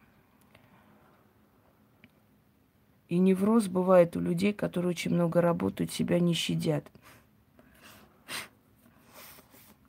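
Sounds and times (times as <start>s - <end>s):
speech: 3.1s - 7.2s
nervous nose sniffling: 7.8s - 9.8s.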